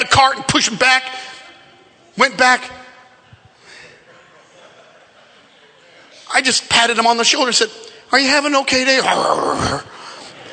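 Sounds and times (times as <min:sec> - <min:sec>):
speech: 0:00.2 - 0:01.3, 0:02.2 - 0:02.8, 0:06.3 - 0:09.9
laughter: 0:03.2 - 0:06.3, 0:10.0 - 0:10.5
human voice imitating a growling grumble of an annoyed greeter: 0:09.0 - 0:09.9.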